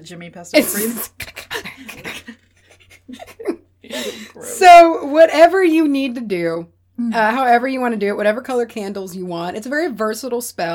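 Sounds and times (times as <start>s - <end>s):
speech: 0.0s - 2.3s, 4.0s - 10.7s
person imitating a quick breathy panting pattern: 3.9s - 4.8s.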